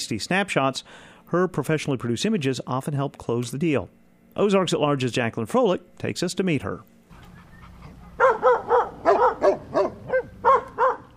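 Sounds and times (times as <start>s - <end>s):
speech: 0.1s - 7.0s
several dogs barking in a pen: 7.2s - 11.1s.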